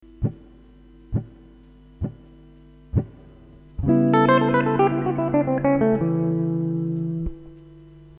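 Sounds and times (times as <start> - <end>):
blues guitar licks: 3.0 - 7.6.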